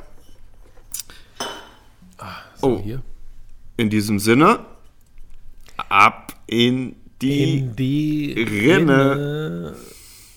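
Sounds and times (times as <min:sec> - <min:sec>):
glasses clinking in a toast: 0:01.4 - 0:01.9
speech: 0:02.6 - 0:03.1, 0:03.8 - 0:04.7, 0:05.9 - 0:10.0.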